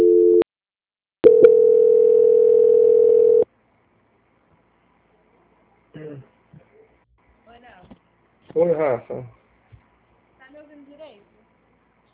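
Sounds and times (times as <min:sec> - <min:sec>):
telephone line tone during a call transfer: 0:00.0 - 0:00.4, 0:01.2 - 0:03.5
speech: 0:08.6 - 0:09.4.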